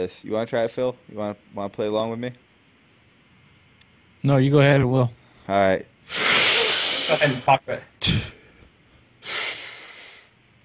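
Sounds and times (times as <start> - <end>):
speech: 0.0 - 2.4, 4.2 - 6.2, 7.1 - 8.4
deep breath during a relaxation breathing exercise: 6.1 - 7.5, 8.1 - 10.3.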